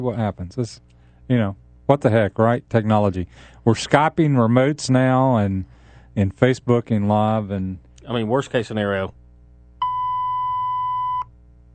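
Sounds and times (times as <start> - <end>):
speech: 0.0 - 9.2
faint low hum: 0.0 - 11.7
electronic beep: 9.8 - 11.3.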